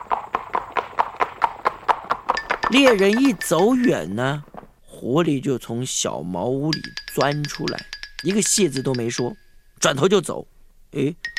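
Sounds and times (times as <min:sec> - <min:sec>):
horse hooves galloping as its rider chases a fox: 0:00.0 - 0:04.9, 0:06.7 - 0:09.4
speech: 0:02.7 - 0:11.3.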